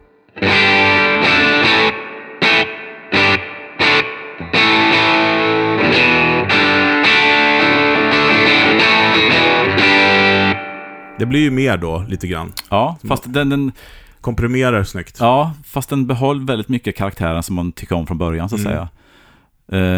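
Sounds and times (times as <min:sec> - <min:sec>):
heavily overdriven electric guitar through a preamp with gain turned up playing chords: 0:00.0 - 0:11.1
speech: 0:11.2 - 0:19.0, 0:19.7 - 0:19.9.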